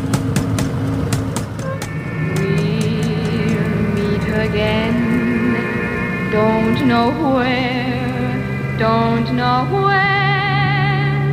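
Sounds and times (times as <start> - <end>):
sharp ticks: 0.1 - 4.9
taxi accelerating away: 1.8 - 11.3
speech: 6.3 - 8.0, 8.8 - 10.2.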